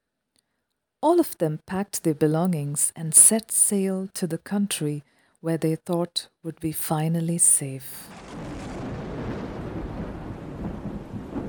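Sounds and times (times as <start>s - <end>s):
speech: 1.0s - 8.4s
deep rolling thunder of a heavy thunderstorm: 8.1s - 11.4s
steady rain: 8.1s - 11.4s.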